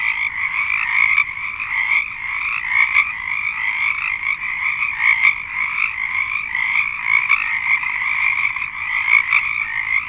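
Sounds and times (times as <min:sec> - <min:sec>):
chorus of many frogs calling in trills and peeps: 0:00.0 - 0:10.0.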